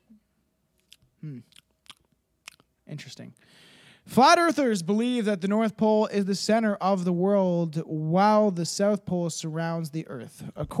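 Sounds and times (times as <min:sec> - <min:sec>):
wet chewing of gum: 0:00.8 - 0:02.7
speech: 0:01.2 - 0:01.6, 0:02.9 - 0:10.7.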